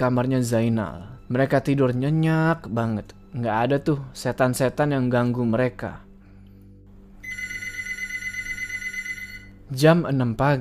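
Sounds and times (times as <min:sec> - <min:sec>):
speech: 0:00.0 - 0:06.0, 0:09.7 - 0:10.5
telephone ringing with a bright electronic tone: 0:07.2 - 0:09.6.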